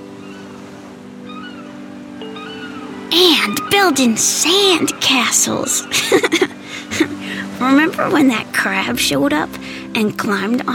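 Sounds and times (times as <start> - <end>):
seagulls calling at a beach: 0.0 - 10.0
ocean surf at a beach: 0.0 - 10.7
speech: 3.4 - 10.7
laughter: 5.7 - 8.1.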